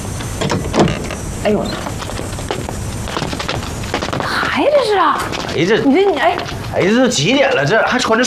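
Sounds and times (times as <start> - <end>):
door being opened: 0.2 - 3.5
speech: 1.4 - 1.9, 4.6 - 8.2.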